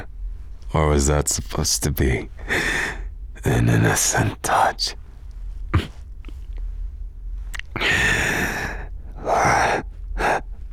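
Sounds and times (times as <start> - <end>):
speech: 0.7 - 5.0
heavy breathing: 2.4 - 3.2, 7.6 - 10.7.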